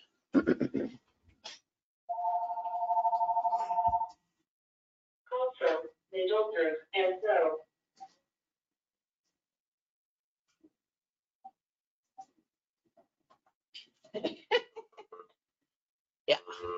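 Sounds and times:
laughter: 0:00.4 - 0:01.0, 0:14.2 - 0:15.1
person talking: 0:00.4 - 0:01.0, 0:05.3 - 0:07.6, 0:16.3 - 0:16.7
landline telephone ringing with a buzzing electronic trill: 0:02.1 - 0:04.1.

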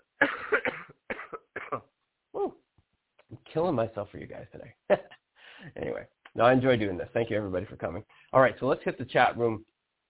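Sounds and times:
person coughing: 0:00.2 - 0:02.5
speech: 0:03.6 - 0:09.7.

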